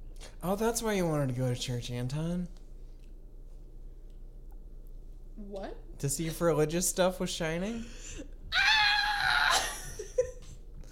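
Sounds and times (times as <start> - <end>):
speech: 0.4 - 2.6, 5.5 - 8.6
muffled scream into a pillow: 8.5 - 9.8.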